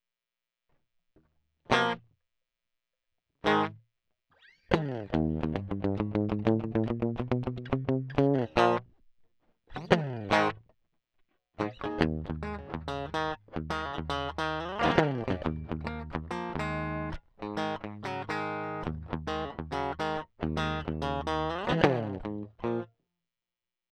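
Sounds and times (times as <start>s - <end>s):
crunchy blues music: 1.7s - 2.0s, 3.4s - 3.8s, 4.7s - 8.9s, 9.7s - 10.6s, 11.6s - 22.9s.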